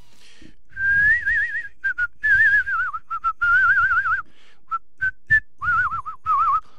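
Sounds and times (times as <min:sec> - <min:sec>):
person whistling a wavering tune with heavy vibrato: 0:00.7 - 0:04.2, 0:05.2 - 0:06.7.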